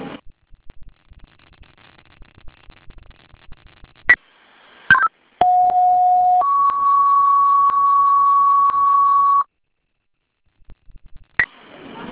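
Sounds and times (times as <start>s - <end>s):
faint radio static: 0.0s - 12.1s
fire dispatch alert tones for a second alarm assignment: 4.9s - 9.5s.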